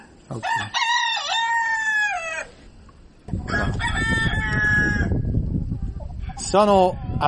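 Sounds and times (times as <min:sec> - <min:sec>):
speech: 0:00.3 - 0:00.9, 0:06.5 - 0:07.2
rooster crowing in a farmyard: 0:00.4 - 0:02.6, 0:03.4 - 0:05.3.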